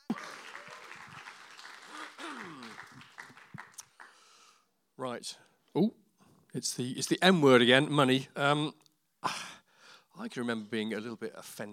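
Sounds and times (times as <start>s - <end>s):
cheering voices: 0.0s - 3.6s
audience applauding: 0.0s - 4.4s
speech: 0.1s - 0.4s, 5.0s - 9.5s, 10.2s - 11.7s.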